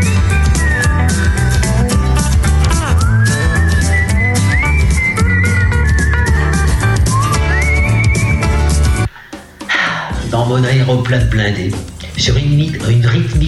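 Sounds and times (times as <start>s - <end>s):
person whistling a cheerful tune: 0.0s - 9.1s
full band backing with steady bass and drums: 0.0s - 13.4s
speech: 10.6s - 13.4s.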